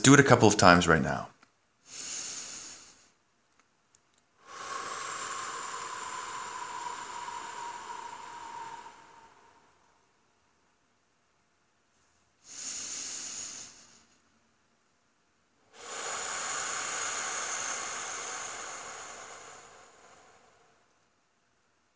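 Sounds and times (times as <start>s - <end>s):
speech: 0.0s - 1.3s
quick inhales: 1.8s - 3.2s, 4.4s - 10.1s, 12.4s - 14.2s, 15.7s - 21.0s
slow exhales blown through pursed lips: 1.8s - 3.2s, 4.4s - 10.2s, 12.4s - 14.2s, 15.7s - 21.1s.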